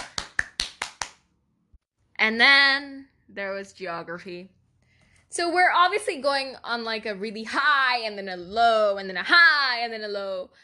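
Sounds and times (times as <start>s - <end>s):
person clapping hands: 0.0s - 1.3s
speech: 2.2s - 4.6s, 5.3s - 10.6s.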